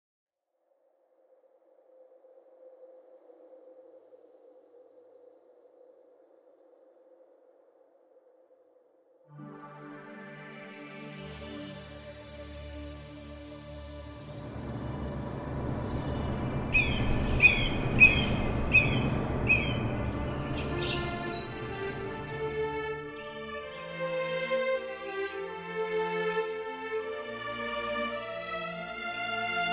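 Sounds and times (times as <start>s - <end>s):
orchestral music: 9.4s - 29.7s.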